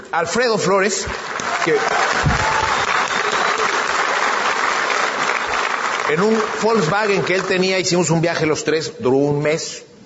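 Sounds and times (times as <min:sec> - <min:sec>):
speech: 0:00.1 - 0:02.4, 0:06.1 - 0:09.9
audience applause: 0:01.0 - 0:08.0.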